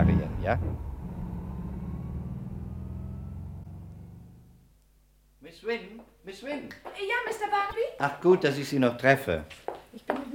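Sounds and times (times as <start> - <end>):
speech: 0.0 - 0.9, 5.5 - 10.3
car engine rumbling while driving toward a warehouse: 0.0 - 4.8.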